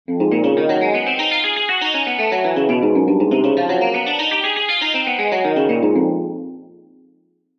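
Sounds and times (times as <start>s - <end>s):
guitar exercises at 120 bpm: 0.1s - 6.8s.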